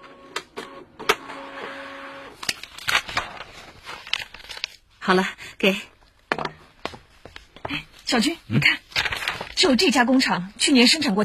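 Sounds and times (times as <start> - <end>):
office printer whirring while printing a document: 0.0 - 3.4
speech: 5.0 - 5.9, 8.1 - 8.8, 9.6 - 11.2.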